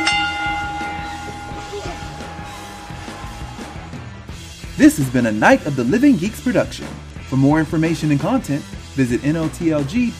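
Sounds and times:
bell ringing: 0.0s - 3.9s
speech: 4.8s - 10.1s.

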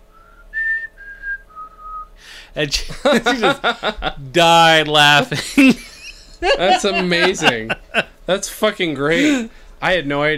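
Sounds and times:
person whistling a movie tune in a store: 0.1s - 2.1s
speech: 2.4s - 10.3s
laughter: 2.7s - 8.2s, 9.1s - 9.5s.

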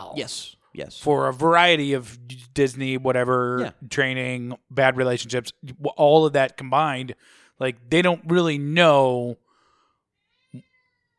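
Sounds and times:
speech: 0.2s - 9.4s
cat meowing: 10.3s - 11.1s.

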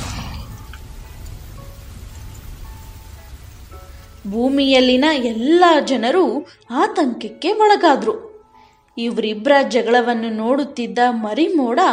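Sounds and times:
heavy rain pouring down: 0.0s - 5.9s
speech: 4.2s - 8.3s, 9.0s - 11.9s.

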